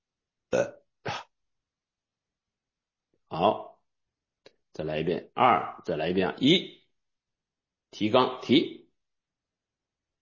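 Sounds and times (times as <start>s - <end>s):
person burping during a body exercise practice: 0.5s - 1.2s
speech: 3.4s - 3.7s, 4.8s - 6.8s, 7.9s - 8.8s.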